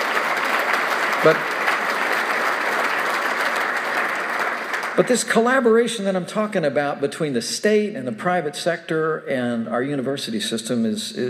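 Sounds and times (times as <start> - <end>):
crowd applauding: 0.0 - 5.6
speech: 1.2 - 1.5, 5.0 - 11.2.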